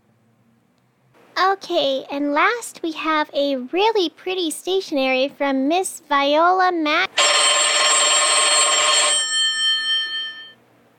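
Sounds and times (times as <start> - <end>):
speech: 1.4 - 7.2
old-style telephone bell ringing: 7.2 - 10.6.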